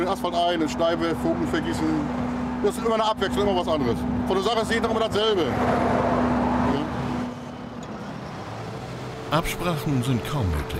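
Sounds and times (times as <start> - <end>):
road traffic roar: 0.0 - 10.7
speech: 0.1 - 6.2, 9.3 - 10.7
cars rushing past: 0.7 - 10.7.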